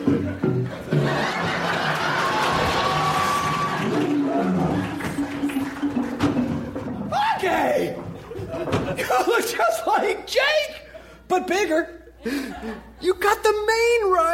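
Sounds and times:
laughter: 0.0s - 9.7s, 12.1s - 13.2s
lion roaring and growling: 3.4s - 5.1s
speech: 11.4s - 14.3s.

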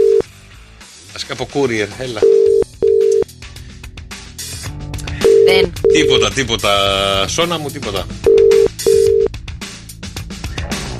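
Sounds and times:
unanswered phone call low-pitched ringback tones: 0.0s - 0.2s, 2.2s - 3.2s, 5.2s - 6.2s, 8.3s - 9.3s
speech: 1.2s - 2.4s, 5.5s - 8.3s.

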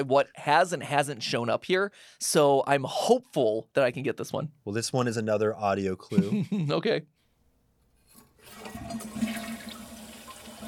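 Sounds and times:
speech: 0.0s - 7.2s
toilet flushing: 8.2s - 10.6s.

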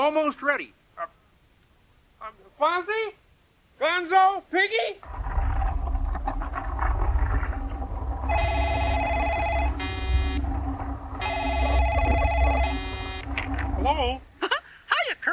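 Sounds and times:
speech: 0.0s - 1.2s, 2.2s - 3.2s, 3.8s - 5.4s
steady low rumble: 5.0s - 14.5s
picture phone ringing in electronic bursts: 8.3s - 13.9s.

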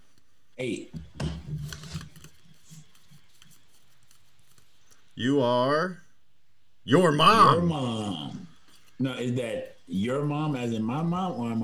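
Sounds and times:
speech: 0.6s - 1.7s, 5.2s - 6.0s, 6.9s - 8.4s, 9.0s - 11.6s
playing cards being shuffled with papery snaps and rustles: 1.5s - 5.1s.

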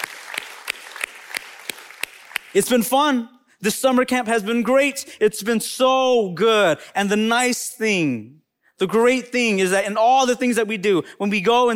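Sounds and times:
audience applauding middle school students: 0.0s - 2.6s
speech: 2.5s - 11.7s.

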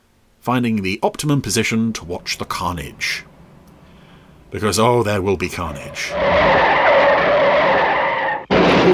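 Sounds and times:
speech: 0.4s - 3.3s, 4.5s - 6.8s
car tire skid screech on a blind bend: 5.5s - 8.9s.

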